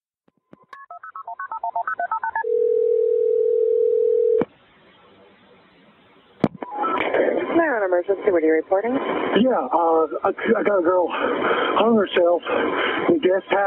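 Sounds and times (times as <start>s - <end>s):
long steady telephone tone: 0.5s - 4.4s, 6.6s - 7.1s
speech: 8.0s - 13.6s.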